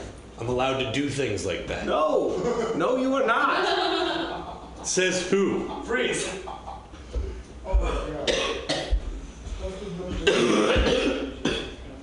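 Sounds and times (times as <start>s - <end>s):
speech: 0.4s - 3.9s, 4.8s - 6.5s
laughter: 2.2s - 7.5s
person coughing: 7.8s - 9.0s, 10.2s - 11.8s.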